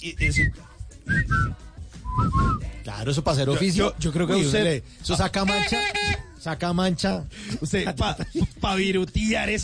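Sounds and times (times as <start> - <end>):
bright whistled melody in an electronic rock song: 0.0 - 2.8
speech: 0.0 - 9.6
laughter: 7.5 - 8.7.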